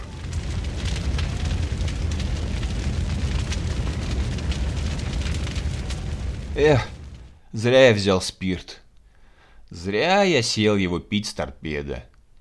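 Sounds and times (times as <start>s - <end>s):
huge festive bonfire at a camp roaring and crackling: 0.0s - 7.6s
speech: 6.6s - 8.8s, 9.7s - 12.1s.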